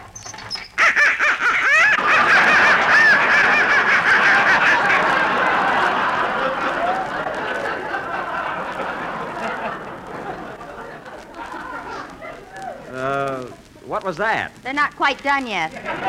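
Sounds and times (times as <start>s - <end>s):
ducks quacking and squawking: 0.6s - 5.8s
laughter: 0.8s - 13.7s, 15.7s - 16.0s
speech: 14.1s - 16.0s.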